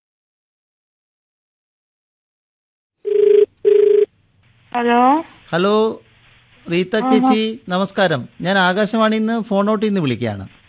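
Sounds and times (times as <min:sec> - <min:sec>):
telephone ringing: 0:03.1 - 0:04.1
speech: 0:04.7 - 0:06.0, 0:06.6 - 0:10.6.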